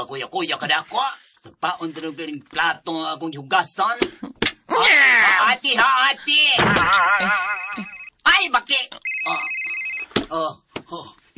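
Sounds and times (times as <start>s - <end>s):
speech: 0.0s - 9.6s, 10.3s - 11.3s
cellphone ringing with a high electronic tone: 6.9s - 8.2s, 9.0s - 10.3s.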